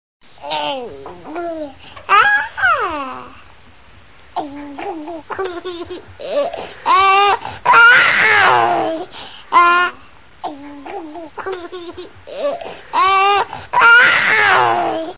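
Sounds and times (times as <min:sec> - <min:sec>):
baby laughing: 0:02.1 - 0:03.3, 0:04.4 - 0:15.1.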